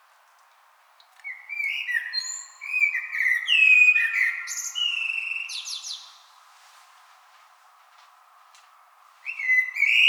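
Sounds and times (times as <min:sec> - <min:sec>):
common blackbird song: 0:01.2 - 0:06.3, 0:09.2 - 0:10.0.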